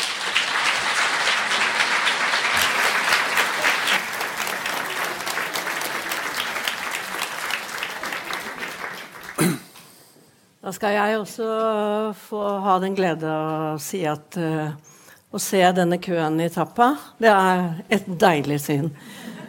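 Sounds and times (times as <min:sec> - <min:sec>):
audience applause at a literary event: 0:00.0 - 0:09.5
speech: 0:10.7 - 0:19.3.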